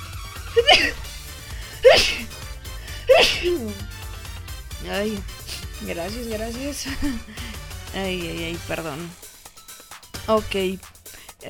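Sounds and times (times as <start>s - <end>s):
person sneezing: 0.6s - 1.1s, 1.7s - 3.8s
speech: 0.6s - 1.1s, 1.8s - 2.3s, 3.2s - 3.9s, 4.8s - 9.2s, 10.3s - 11.4s.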